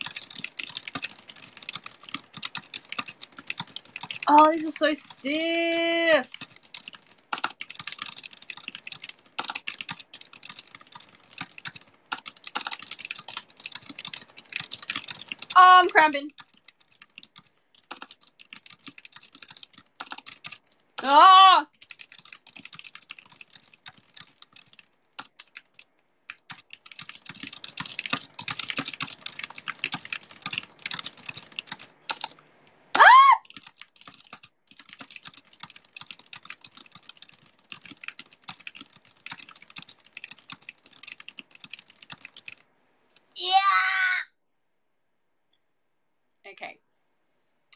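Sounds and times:
fast typing on a computer keyboard: 0.0 - 43.3
speech: 4.3 - 6.4, 15.9 - 16.3, 21.1 - 21.4
short vocal exclamation: 43.4 - 44.3.

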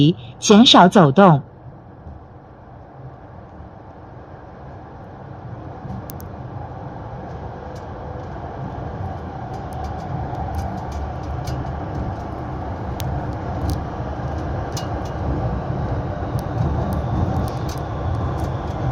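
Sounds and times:
speech: 0.0 - 1.5
Zhengzhou Metro Line 1 subway train running heard from inside the car: 0.0 - 18.9
faint sharp metallic ticks and rattles in a subway car: 9.5 - 12.4, 13.6 - 15.2.

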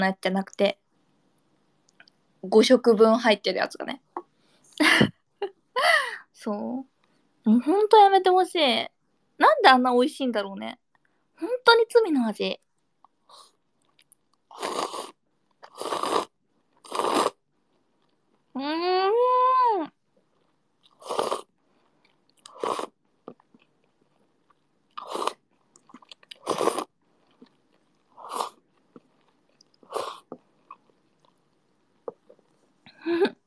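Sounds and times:
speech: 0.0 - 0.8, 2.4 - 4.0, 4.8 - 10.8, 11.4 - 12.6, 18.6 - 20.0, 22.6 - 22.9
ramen noodles being slurped and chewed late at night: 13.3 - 18.5, 20.2 - 32.8.

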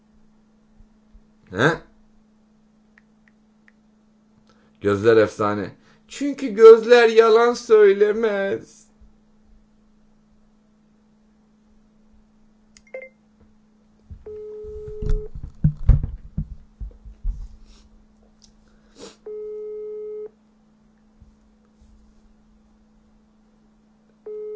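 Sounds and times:
low constant hum: 0.0 - 24.5
speech: 1.5 - 1.9, 4.8 - 8.8
brief clattering noises: 13.4 - 17.7
ringback tone of an unanswered phone call: 14.3 - 15.3, 19.3 - 20.3, 24.3 - 24.5.

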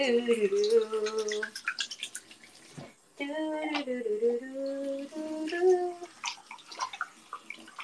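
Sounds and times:
scattered water splashes: 0.2 - 3.0, 3.7 - 7.8
water running from a tap: 0.4 - 2.9, 4.6 - 7.8.

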